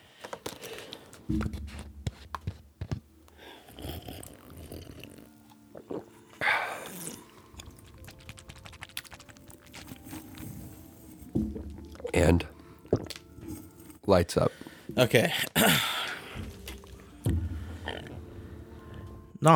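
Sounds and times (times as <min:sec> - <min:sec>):
chewing and biting food with wet crunches: 0:00.0 - 0:14.0
speech: 0:01.3 - 0:01.9, 0:12.2 - 0:12.5, 0:14.1 - 0:15.9.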